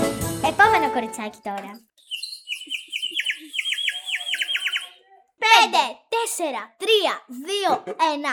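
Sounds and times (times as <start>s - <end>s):
speech: 0.5s - 1.9s, 5.4s - 8.3s
birds singing in summer: 2.0s - 5.1s.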